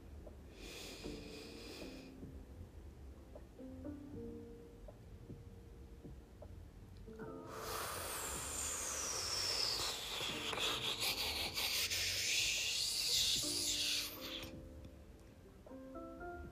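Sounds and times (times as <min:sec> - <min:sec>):
quiet tonal background: 0:00.0 - 0:16.4
deep inhale through the nose during a guided breathing exercise: 0:00.6 - 0:02.2, 0:07.4 - 0:14.6.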